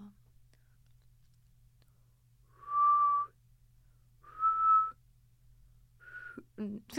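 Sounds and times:
person attempting to whistle: 2.5s - 3.4s, 4.2s - 5.0s, 6.0s - 6.4s.

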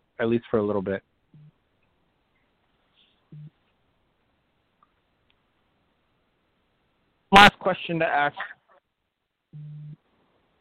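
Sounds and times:
faint hiss: 0.0s - 10.5s
speech: 0.2s - 1.1s, 7.4s - 8.6s
short phone beep low electronic tone: 9.6s - 10.0s.

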